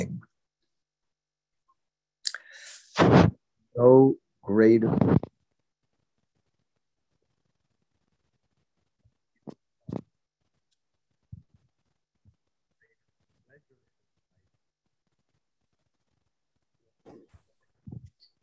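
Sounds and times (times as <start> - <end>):
speech: 3.0 - 5.3
remote speaker's voice breaking up on a phone call over a bad connection: 3.8 - 5.3.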